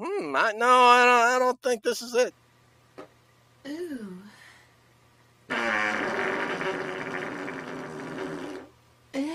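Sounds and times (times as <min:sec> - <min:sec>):
speech: 0:00.0 - 0:02.4
loud rasping fart: 0:05.5 - 0:08.7.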